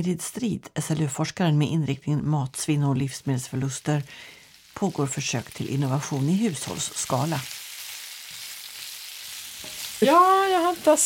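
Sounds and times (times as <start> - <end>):
speech: 0.0 - 7.6, 10.0 - 11.0
blood and potato patties sizzling in a hot pan: 2.2 - 11.0
scrape or stir in a pan: 7.7 - 10.2.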